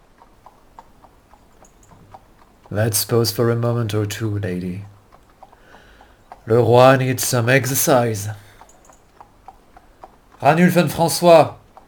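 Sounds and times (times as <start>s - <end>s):
horse hooves clopping as mounted riders leave a courtyard: 0.0s - 11.8s
speech: 2.7s - 4.9s, 6.5s - 8.4s, 10.4s - 11.6s.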